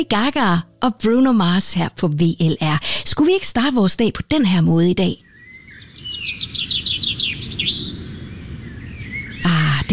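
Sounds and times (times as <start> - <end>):
speech: 0.0 - 5.2, 9.4 - 9.9
bird singing bright high chirps and trills: 4.9 - 9.9.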